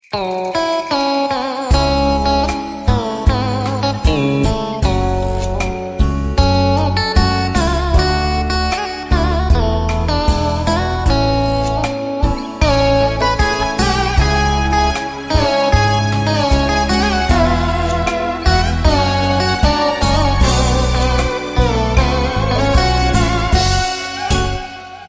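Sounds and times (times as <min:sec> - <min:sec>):
Indian music ringtone: 0:00.0 - 0:25.0.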